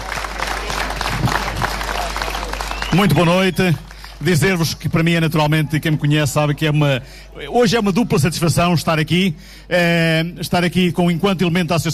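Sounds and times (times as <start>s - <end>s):
audience applause at a formal evening event: 0.0s - 4.7s
speech: 3.0s - 11.9s.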